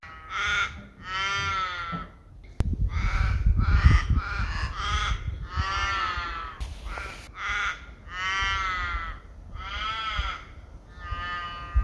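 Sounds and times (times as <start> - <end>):
raven giving hoarse drawn-out croaking calls: 0.0 - 2.0, 2.8 - 11.8.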